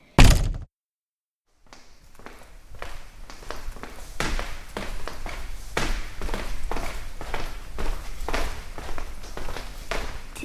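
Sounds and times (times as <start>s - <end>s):
door shutting with a loud thunk: 0.0s - 0.7s
quieter footsteps moving around: 1.6s - 10.4s.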